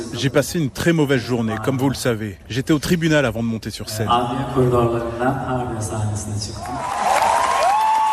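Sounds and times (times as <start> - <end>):
speech: 0.0 - 7.0
concert audience applauding and cheering: 6.6 - 8.1.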